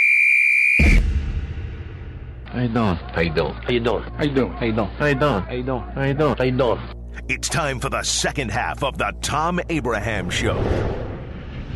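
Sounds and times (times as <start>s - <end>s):
whistle blast to start the clock: 0.2s - 1.1s
speech: 2.6s - 11.0s.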